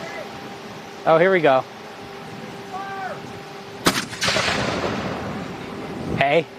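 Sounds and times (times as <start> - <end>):
speech: 1.0 - 1.8, 6.3 - 6.5
loud cannon shot booming with rolling rumble and echo: 3.8 - 5.5.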